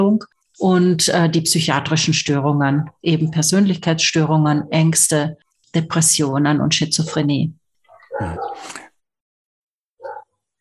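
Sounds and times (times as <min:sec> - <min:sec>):
speech: 0:00.0 - 0:07.6, 0:08.2 - 0:08.8
dog barking outside: 0:07.9 - 0:08.7, 0:10.0 - 0:10.4.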